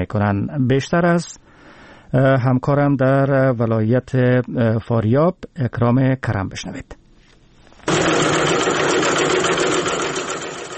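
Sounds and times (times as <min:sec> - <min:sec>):
speech: 0:00.0 - 0:01.4, 0:02.1 - 0:07.0
sewing machines stitching face masks in Faryab province Afghanistan: 0:07.9 - 0:10.7.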